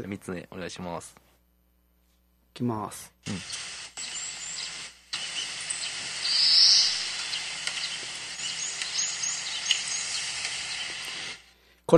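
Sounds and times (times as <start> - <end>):
speech: 0.0 - 1.2, 2.6 - 3.7
steady hiss of ambience: 0.0 - 11.9
bird calling in a mountain forest: 3.3 - 11.4.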